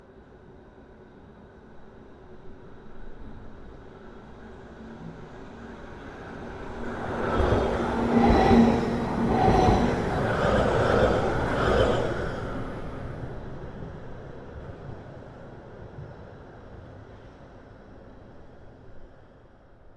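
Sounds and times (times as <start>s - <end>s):
tram passing fast: 4.9s - 16.5s.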